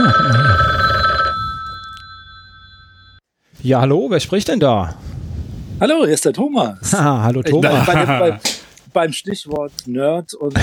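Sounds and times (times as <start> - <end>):
telephone ringing with an incoming call: 0.0 - 3.2
speech: 3.6 - 5.0, 5.8 - 10.6
laughter: 7.4 - 8.5.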